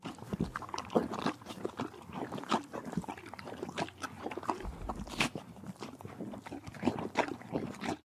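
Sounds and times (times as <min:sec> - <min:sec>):
horse eating apples and carrots: 0:00.0 - 0:08.0.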